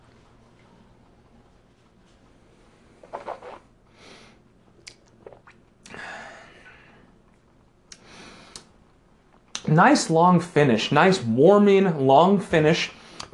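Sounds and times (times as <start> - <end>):
soft slurping sips of bourbon: 3.0 - 3.7, 4.8 - 5.6
wet lip smacks from someone tasting bourbon: 4.8 - 5.9
mouth clicks: 4.8 - 6.0
swallowing: 4.8 - 6.0
speech: 9.7 - 13.3.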